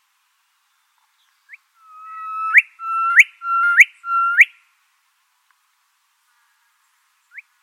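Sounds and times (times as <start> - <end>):
Gilbert's Whistler erdwit call in New South Wales: 1.8 - 4.6.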